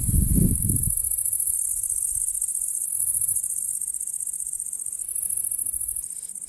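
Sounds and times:
nocturnal crickets and grasshoppers chirping at night: 0.0 - 6.4.

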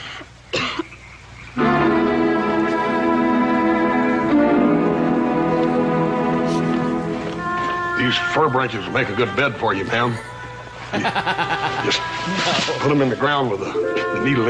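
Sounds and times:
harsh coughing: 0.5 - 1.0
loud sustained musical passage: 1.6 - 14.4
speech: 8.1 - 10.3, 10.9 - 14.4
laughter: 9.8 - 13.8.

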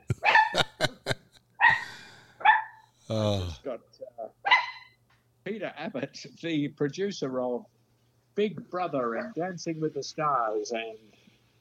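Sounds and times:
laughter: 0.0 - 2.2
large dog yelping: 0.2 - 0.7, 4.5 - 4.9
speech: 3.1 - 4.4, 5.5 - 7.8, 8.4 - 11.2.

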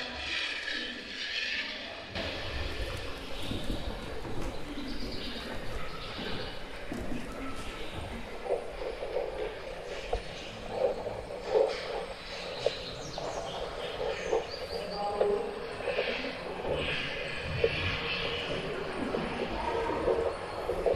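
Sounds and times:
faint indistinct voices: 0.0 - 20.9
noisy outdoor ambience: 0.0 - 20.9
soft pigeon-like bird coos: 0.0 - 20.9.

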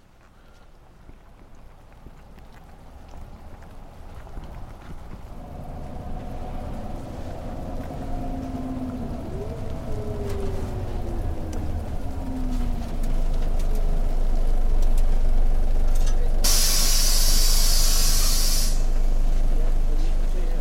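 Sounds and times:
bus diesel engine idling at a bus station in Brastrup: 5.3 - 20.5
bus air brakes hissing at a bus station in Brastrup on a rainy morning: 16.4 - 19.0.

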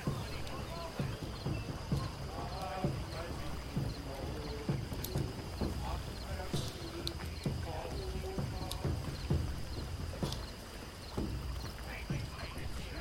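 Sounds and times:
clopping hooves: 0.0 - 13.0
murmuring voices in a night-time Viking village: 0.0 - 13.0.

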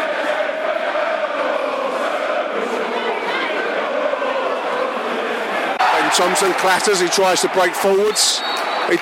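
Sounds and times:
large football stadium crowd roaring and chattering: 0.0 - 9.0
speech: 6.2 - 9.0.

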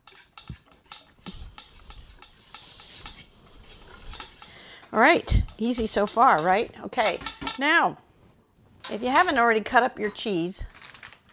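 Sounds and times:
whisk stirring dry cornbread ingredients with flour baking soda and baking powder in a bowl: 0.0 - 7.5
speech: 4.9 - 8.0, 8.9 - 10.7.

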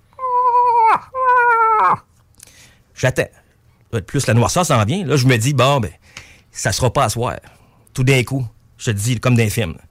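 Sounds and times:
imitated calls of a cow moose in heat at nightfall: 0.1 - 2.0
speech: 3.0 - 9.8.

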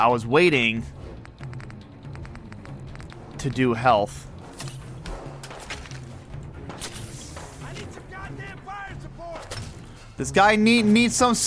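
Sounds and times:
speech: 0.0 - 1.0, 3.4 - 4.3, 10.2 - 11.4
video game sounds: 1.0 - 9.6.

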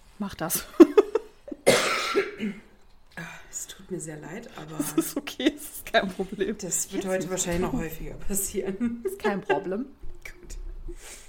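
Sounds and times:
speech: 0.2 - 0.9, 2.4 - 10.0
laughter: 0.8 - 1.6, 4.6 - 6.6, 8.7 - 9.8
person coughing harshly: 1.6 - 2.7.

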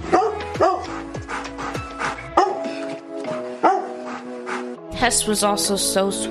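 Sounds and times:
female dog barking deeply with higher yips: 0.0 - 1.1, 2.3 - 2.8, 3.6 - 4.1
speech: 5.0 - 6.2.

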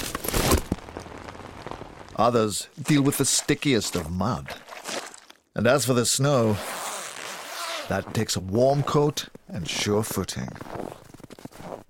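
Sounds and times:
rain pattering onto a hard surface: 0.7 - 2.3
speech: 2.2 - 4.7, 5.6 - 6.8, 7.9 - 11.0.

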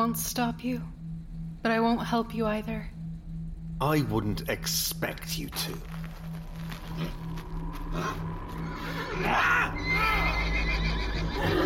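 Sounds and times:
speech: 0.0 - 1.0, 1.6 - 3.0, 3.8 - 6.0, 7.0 - 7.2, 8.0 - 8.3, 9.2 - 10.8, 11.4 - 11.6
low steady rumble: 0.0 - 11.6
several agitated horses neighing and whinnying: 7.9 - 11.6.

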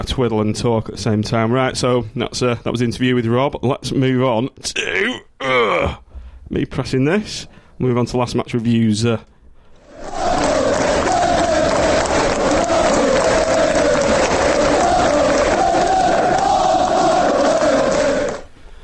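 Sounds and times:
speech: 0.0 - 9.3
roaring stadium crowd chanting and cheering: 9.8 - 18.6.

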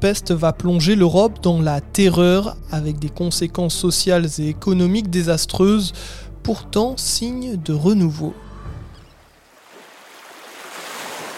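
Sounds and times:
speech: 0.0 - 8.4
harbour water lapping around an anchored cargo ship in the port of Marseille: 9.1 - 11.3.

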